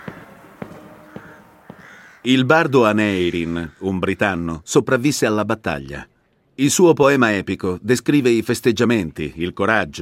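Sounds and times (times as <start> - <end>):
crows cawing: 0.0 - 4.3
speech: 2.2 - 9.9.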